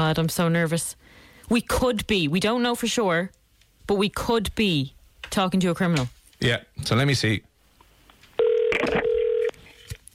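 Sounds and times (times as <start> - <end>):
speech: 0.0 - 7.5
quiet hiss: 0.0 - 8.4
electronic telephone ringback tone heard over the line: 8.4 - 9.6.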